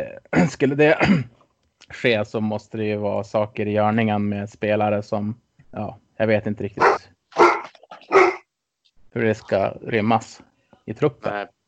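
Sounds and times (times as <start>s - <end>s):
speech: 0.0s - 7.4s, 9.2s - 11.6s
dogs barking: 6.8s - 8.5s.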